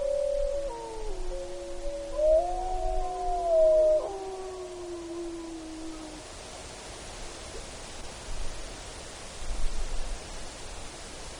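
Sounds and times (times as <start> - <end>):
gray wolves howling in chorus in Alaska: 0.0 - 6.2.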